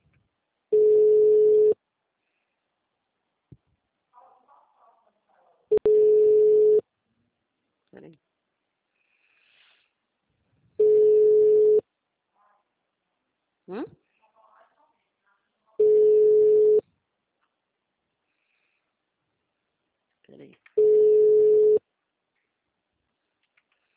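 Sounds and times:
telephone busy-signal tone beeps: 0:00.7 - 0:01.8, 0:05.7 - 0:06.8, 0:10.8 - 0:11.8, 0:15.8 - 0:16.8, 0:20.8 - 0:21.8.

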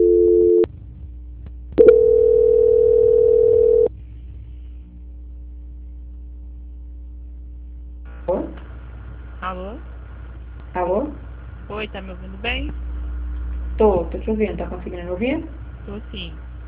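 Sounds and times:
telephone line tones while a call is being transferred: 0:00.0 - 0:00.7, 0:01.8 - 0:03.9
low telephone line hum: 0:00.0 - 0:16.6
speech: 0:11.8 - 0:12.9, 0:13.8 - 0:16.5.

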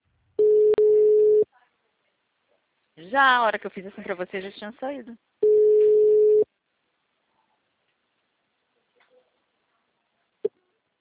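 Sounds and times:
telephone busy tone after a dropped call: 0:00.4 - 0:01.4, 0:05.4 - 0:06.5
speech: 0:03.0 - 0:05.4.

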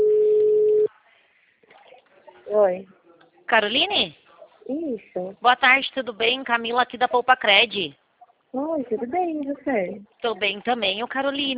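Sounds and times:
ringback tone of an outgoing telephone call: 0:00.0 - 0:00.9
speech: 0:02.6 - 0:11.5.

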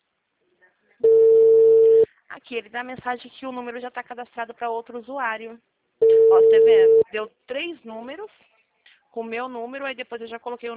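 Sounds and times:
telephone line tone while a number is dialed: 0:01.0 - 0:02.1, 0:06.0 - 0:07.1
speech: 0:02.5 - 0:08.5, 0:09.1 - 0:10.7.

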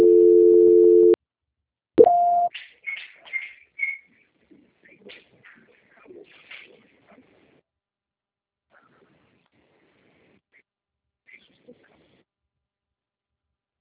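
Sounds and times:
low telephone tone during a call transfer to a busy extension: 0:00.0 - 0:01.2
short high beep: 0:02.0 - 0:02.5.

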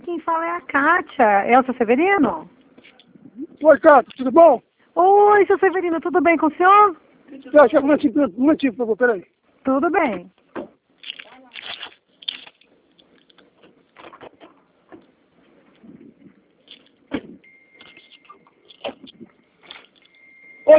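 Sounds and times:
speech: 0:00.2 - 0:02.6, 0:03.6 - 0:10.4
rustling inside a car: 0:10.4 - 0:20.2
steady electronic car chime tone: 0:17.4 - 0:18.6, 0:20.0 - 0:20.7.

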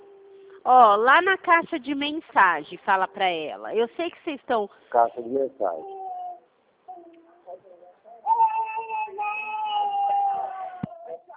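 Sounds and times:
speech: 0:00.6 - 0:06.0
child crying: 0:05.8 - 0:07.5, 0:08.2 - 0:11.3.

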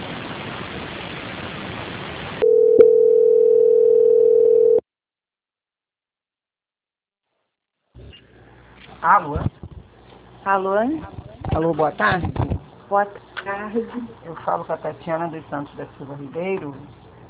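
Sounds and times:
telephone line hiss while a call is transferred: 0:02.4 - 0:04.8
speech: 0:09.1 - 0:09.5, 0:10.5 - 0:17.0.

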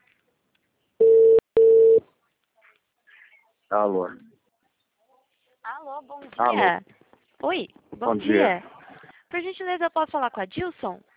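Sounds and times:
telephone ringback tone beeps as a call connects: 0:01.0 - 0:02.0
speech: 0:03.7 - 0:04.3, 0:05.8 - 0:08.7, 0:09.3 - 0:11.1.

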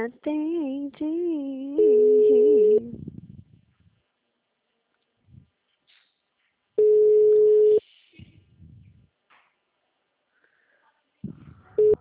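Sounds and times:
speech: 0:00.0 - 0:02.1
telephone busy signal: 0:01.8 - 0:02.8, 0:06.8 - 0:07.8
low sounds: 0:02.7 - 0:04.1, 0:07.9 - 0:09.2, 0:10.9 - 0:11.9.

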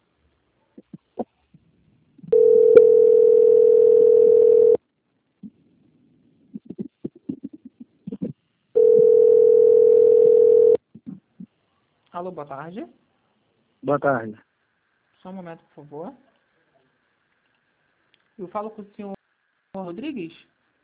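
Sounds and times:
telephone line tone while a call is put on hold and transferred: 0:02.3 - 0:04.8, 0:08.8 - 0:10.8
speech: 0:12.2 - 0:13.0, 0:13.8 - 0:14.5, 0:15.2 - 0:16.3, 0:18.4 - 0:19.2, 0:19.8 - 0:20.5.

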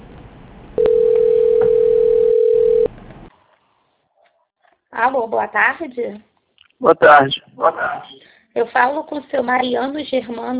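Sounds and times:
steady electronic telephone tone during call transfer to a bank: 0:00.8 - 0:02.9
speech: 0:05.0 - 0:10.5.

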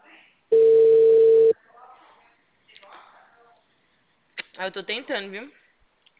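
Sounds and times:
ringback tone of an outgoing telephone call: 0:00.5 - 0:01.5
speech: 0:04.6 - 0:05.6.

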